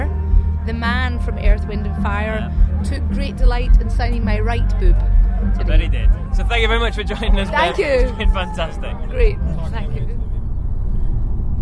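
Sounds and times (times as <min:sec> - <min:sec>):
speech: 0:00.7 - 0:10.1
engine and road rumble from inside a moving car: 0:04.9 - 0:11.6.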